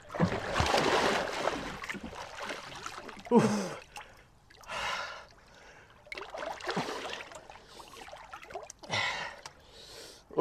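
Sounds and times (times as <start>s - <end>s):
person swimming in cold water with splashing strokes: 0.0s - 4.8s, 5.4s - 8.9s
person gasping while swimming in cold water: 3.3s - 3.9s, 8.9s - 10.2s.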